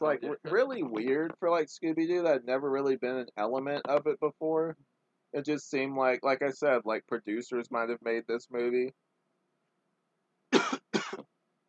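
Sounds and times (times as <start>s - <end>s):
speech: 0.0s - 9.1s
person coughing harshly: 10.6s - 11.2s.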